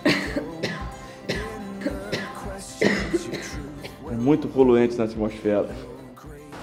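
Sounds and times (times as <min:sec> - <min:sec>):
person coughing: 0:00.0 - 0:04.1
speech: 0:04.2 - 0:05.9.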